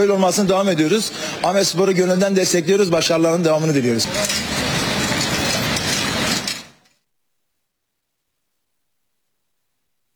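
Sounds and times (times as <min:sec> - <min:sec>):
speech: 0:00.0 - 0:04.7
tourist passenger train rolling on rails between Ankara and Zonguldak: 0:04.0 - 0:06.8.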